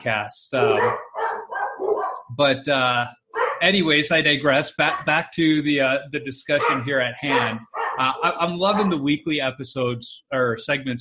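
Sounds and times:
speech: 0:00.0 - 0:01.1, 0:01.8 - 0:11.0
dogs barking with harsh yaps: 0:00.5 - 0:02.3, 0:03.4 - 0:03.7, 0:04.8 - 0:05.2, 0:06.5 - 0:09.0.

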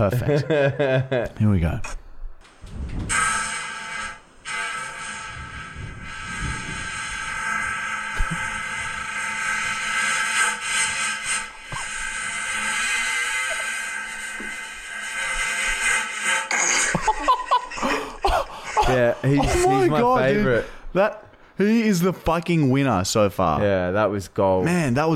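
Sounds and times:
laughter: 0:00.0 - 0:01.4, 0:16.7 - 0:20.7
speech: 0:00.0 - 0:02.0, 0:19.2 - 0:25.1
long raspy recorded fart: 0:02.6 - 0:17.9.

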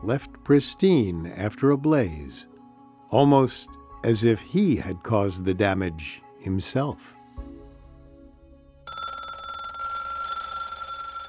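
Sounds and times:
speech: 0:00.0 - 0:02.5, 0:03.1 - 0:07.6
telephone bell ringing: 0:08.9 - 0:11.2.

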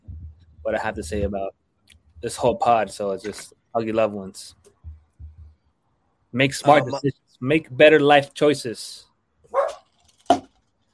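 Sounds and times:
speech: 0:00.7 - 0:01.6, 0:02.2 - 0:04.6, 0:06.3 - 0:09.1
dog barking sharply: 0:09.5 - 0:09.8.

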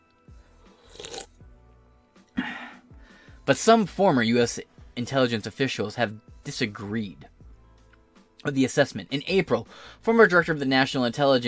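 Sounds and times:
person slurping a drink: 0:00.7 - 0:01.4
speech: 0:03.5 - 0:07.3, 0:08.4 - 0:11.4.

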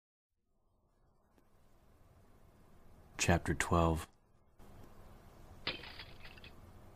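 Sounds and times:
steady low hum: 0:00.6 - 0:06.9
speech: 0:03.2 - 0:04.1
single pane of glass shattering: 0:05.6 - 0:06.6.

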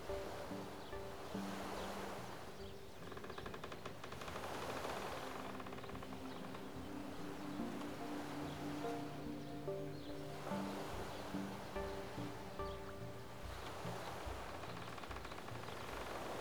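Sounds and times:
small waves lapping at the edge of a Canadian lake: 0:00.0 - 0:16.4.

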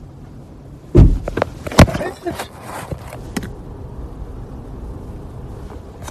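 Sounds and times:
low steady engine rumble: 0:00.0 - 0:06.0
car door slamming shut: 0:00.9 - 0:02.1
car being kicked: 0:00.9 - 0:02.3.

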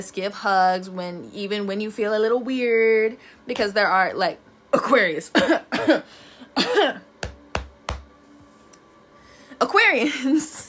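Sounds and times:
speech: 0:00.0 - 0:07.1, 0:09.6 - 0:10.6
person faking a cough: 0:05.3 - 0:07.0.

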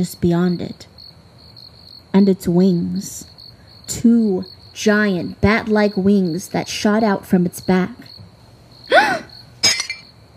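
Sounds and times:
speech: 0:00.0 - 0:00.9, 0:02.1 - 0:08.2
dropped drinking glass shattering on a hard surface: 0:09.6 - 0:10.0.

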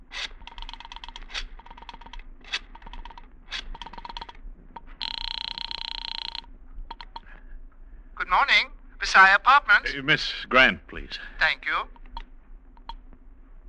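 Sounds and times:
phone being dialed clicks: 0:00.2 - 0:07.3, 0:11.9 - 0:12.2
phone ringing: 0:00.5 - 0:02.2, 0:02.8 - 0:07.2, 0:11.9 - 0:12.2
speech: 0:08.3 - 0:12.0.

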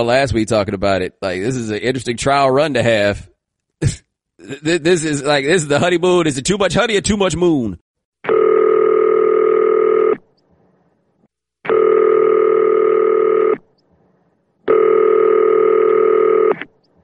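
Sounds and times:
speech: 0:00.0 - 0:08.4
telephone ringing through to voicemail: 0:08.3 - 0:10.2, 0:11.7 - 0:13.6, 0:14.7 - 0:16.6.

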